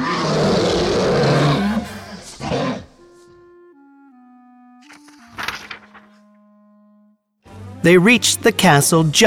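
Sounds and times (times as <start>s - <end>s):
huge dragon roaring: 0.0s - 3.0s
speech: 7.8s - 9.2s.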